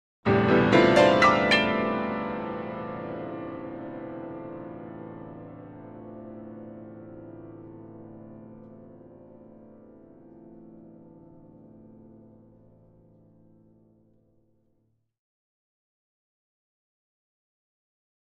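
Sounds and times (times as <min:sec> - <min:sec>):
grand piano ascending chords: 0:00.3 - 0:14.0.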